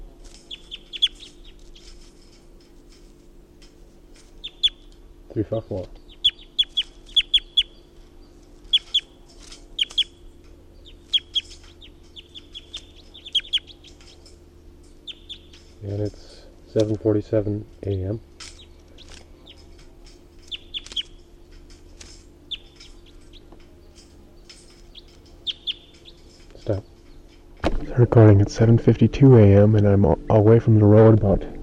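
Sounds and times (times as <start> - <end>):
steady low hum: 0.0 - 31.6
bird calls and chirps: 0.3 - 2.4, 4.2 - 5.0, 5.6 - 16.2, 17.8 - 27.5
speech: 5.3 - 6.0, 16.8 - 18.3, 28.0 - 31.6.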